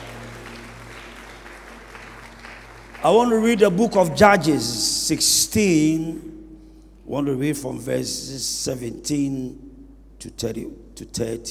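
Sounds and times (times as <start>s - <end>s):
audience applauding: 0.0s - 4.8s
faint low hum: 0.0s - 11.4s
speech: 3.0s - 6.4s, 7.1s - 11.4s.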